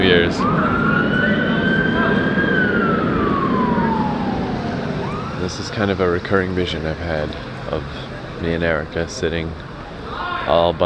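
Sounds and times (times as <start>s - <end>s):
emergency vehicle siren wailing on a city street: 0.0s - 8.3s
dense street traffic noise: 0.0s - 10.8s
speech: 0.2s - 0.8s, 5.5s - 9.7s, 10.5s - 10.8s.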